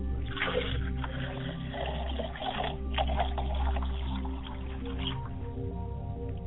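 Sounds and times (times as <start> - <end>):
water poured and splashing for ritual purification: 0.2 - 5.4
faint water dribbles: 0.2 - 6.4.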